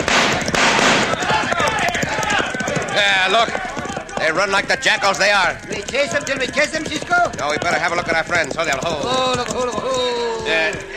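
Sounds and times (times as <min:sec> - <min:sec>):
gunshots fired over the heads of bandits in a cattle raid: 0:00.0 - 0:03.0
people shouting: 0:00.0 - 0:08.0, 0:09.0 - 0:10.9
speech: 0:03.0 - 0:10.9.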